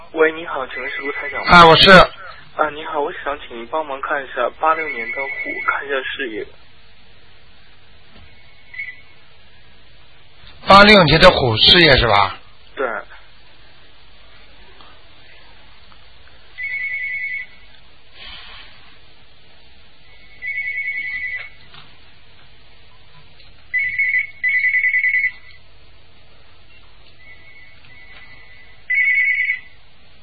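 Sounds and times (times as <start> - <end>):
speech: 0.1 - 6.6, 10.7 - 13.1
telephone electronic ringtone trilling in short bursts: 4.8 - 5.7, 8.7 - 9.0, 16.6 - 17.5, 20.4 - 21.5, 23.8 - 25.4, 27.2 - 29.7.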